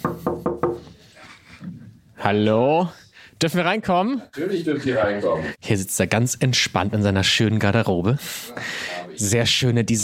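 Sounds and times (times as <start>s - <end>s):
knocking on a wooden dressing room door: 0.0s - 0.8s
faint room noise: 0.0s - 10.0s
speech: 2.3s - 10.0s.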